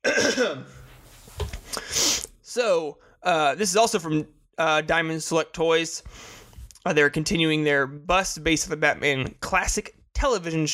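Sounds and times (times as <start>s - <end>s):
person coughing and clearing throat: 0.0s - 0.8s
speech: 0.3s - 0.8s, 2.6s - 10.7s.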